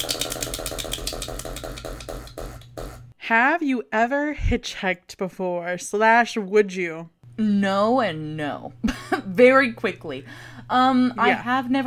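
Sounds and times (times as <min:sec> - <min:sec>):
prize wheel spinning: 0:00.0 - 0:02.9
speech: 0:03.3 - 0:11.8.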